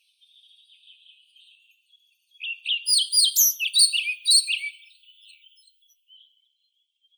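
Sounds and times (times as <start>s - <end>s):
European pied flycatcher Ficedula hypoleuca singing: 2.4s - 6.3s.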